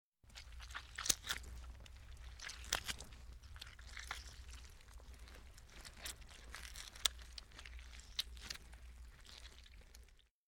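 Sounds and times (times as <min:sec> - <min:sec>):
flesh ripping: 0:00.3 - 0:10.3.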